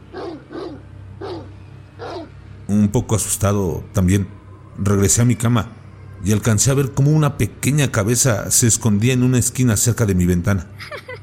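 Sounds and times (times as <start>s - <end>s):
low steady hum: 0.0s - 11.2s
dog barking nervously: 0.1s - 2.3s
speech: 2.7s - 11.2s.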